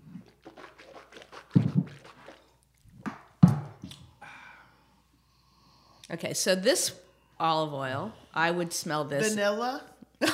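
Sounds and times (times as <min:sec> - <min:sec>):
water being rinsed around a mouth during a tasting: 0:00.0 - 0:03.0
splashy gulps: 0:00.0 - 0:04.0
speech: 0:06.1 - 0:10.3.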